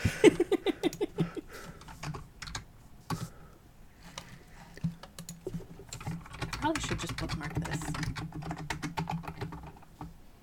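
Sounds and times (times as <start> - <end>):
laughter: 0.0 - 1.6
typing on a mechanical keyboard: 1.7 - 3.3, 4.2 - 10.1.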